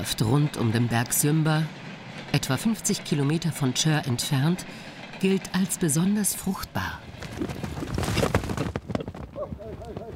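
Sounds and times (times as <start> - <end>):
speech: 0.0 - 7.7
busy noisy outdoor background: 0.0 - 10.1
hooves of horses of a nomadic herder clip-clopping on the steppe: 7.0 - 10.1.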